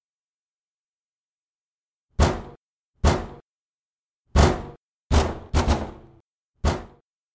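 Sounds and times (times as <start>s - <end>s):
heavy pounding on a door: 2.2s - 3.4s, 4.4s - 7.0s.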